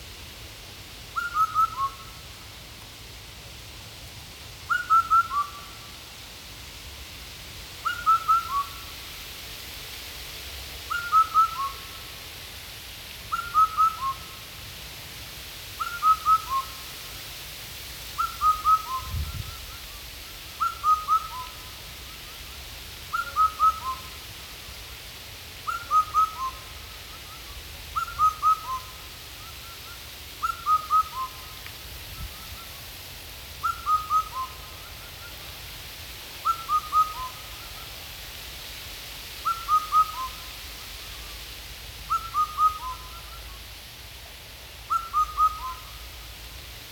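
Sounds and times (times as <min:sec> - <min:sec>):
Indian cuckoo Cuculus micropterus calling: 0:01.2 - 0:02.1, 0:04.7 - 0:05.7, 0:07.8 - 0:08.9, 0:10.9 - 0:12.0, 0:13.3 - 0:14.4, 0:15.8 - 0:16.8, 0:18.2 - 0:20.0, 0:20.6 - 0:22.4, 0:23.1 - 0:24.2, 0:25.6 - 0:32.8, 0:33.6 - 0:35.4, 0:36.4 - 0:37.9, 0:39.4 - 0:41.3, 0:42.1 - 0:43.6, 0:44.9 - 0:46.0.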